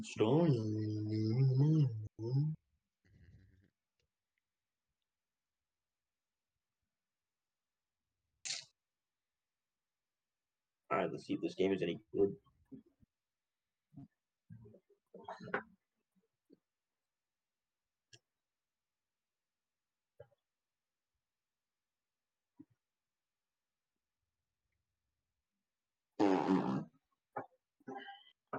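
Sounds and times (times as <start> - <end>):
speech: 0.0 - 2.6, 11.1 - 12.9, 15.2 - 15.7
loud raspy fart noise with sputtering bursts: 26.2 - 27.0.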